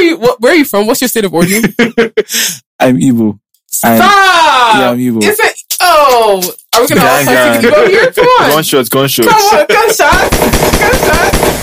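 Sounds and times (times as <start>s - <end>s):
speech: 0.2s - 11.6s
laughter: 1.4s - 2.5s, 6.9s - 11.3s
person vocally imitating machine-gun fire: 1.6s - 2.6s, 9.3s - 11.6s
person shouting: 3.8s - 4.9s, 6.9s - 8.6s, 9.2s - 11.3s.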